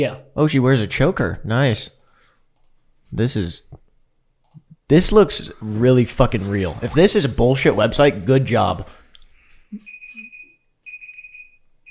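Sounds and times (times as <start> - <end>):
speech: 0.0 - 2.0, 3.1 - 3.8, 4.9 - 9.0, 9.7 - 9.9
faint noise: 0.0 - 11.8
electronic timer beeping: 9.8 - 11.8.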